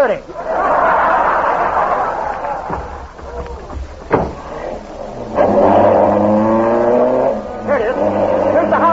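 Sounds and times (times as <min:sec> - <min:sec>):
speech: 0:00.0 - 0:00.5
laughter: 0:00.3 - 0:04.8
thump: 0:02.6 - 0:04.7
ambulance engine roaring and revving while driving: 0:04.4 - 0:08.9.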